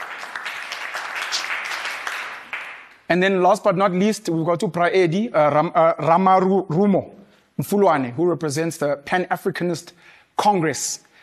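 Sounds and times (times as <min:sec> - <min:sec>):
audience applause at an evening panel event: 0:00.0 - 0:03.0
speech: 0:03.1 - 0:11.1.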